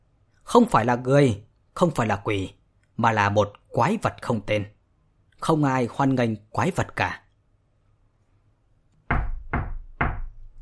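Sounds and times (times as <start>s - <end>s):
speech: 0.5s - 4.8s, 5.4s - 7.2s
soft knocks on a door: 9.1s - 10.4s.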